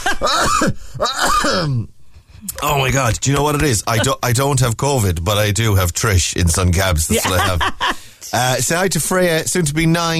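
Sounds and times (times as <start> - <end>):
person coughing from an irritated throat: 0.0 - 1.9
throat clearing from an irritated throat: 0.0 - 1.9
speech: 0.2 - 10.1
laughter: 7.0 - 8.0.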